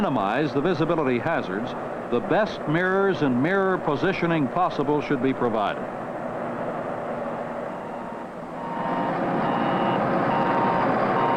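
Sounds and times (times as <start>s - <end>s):
speech: 0.0s - 6.0s
loud continuous truck diesel engine rumble: 0.0s - 11.3s
truck backup alarm beeping in reverse: 7.6s - 11.3s.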